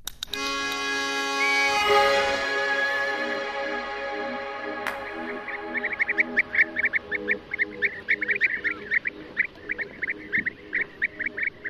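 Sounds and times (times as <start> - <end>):
steady harmonic tone: 0.5 - 11.6
nesting colony of European bee-eaters trilling: 5.0 - 11.6.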